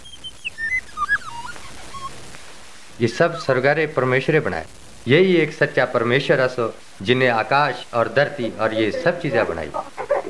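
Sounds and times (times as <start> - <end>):
high thin chirps and short whistled sweeps: 0.0 - 2.3
speech: 3.0 - 10.0
laughter: 8.0 - 10.2.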